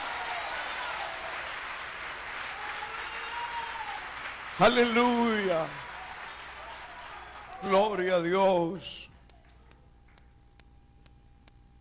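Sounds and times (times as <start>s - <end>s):
sustained applause from a large crowd: 0.0s - 8.7s
speech: 4.6s - 5.9s, 7.6s - 9.1s.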